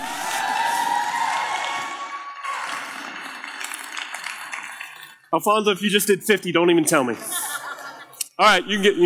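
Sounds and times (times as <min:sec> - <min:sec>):
scattered whoops: 0:00.0 - 0:02.8
crowd cheering on people doing push-ups: 0:00.0 - 0:04.8
speech: 0:05.3 - 0:07.4, 0:08.4 - 0:09.0
laughter: 0:06.8 - 0:08.4.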